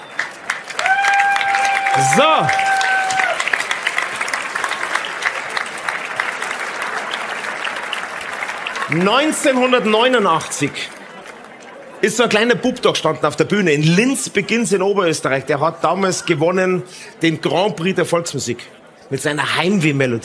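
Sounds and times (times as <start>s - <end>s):
audience at a show in Rust clapping: 0.0s - 12.6s
speech: 2.0s - 2.7s, 8.9s - 11.0s, 12.0s - 20.2s.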